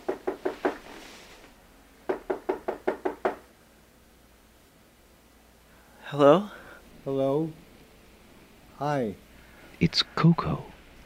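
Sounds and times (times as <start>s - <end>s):
knocking on a door: 0.0s - 0.8s, 2.1s - 3.5s
speech: 6.1s - 7.6s, 8.8s - 9.2s, 9.8s - 10.7s.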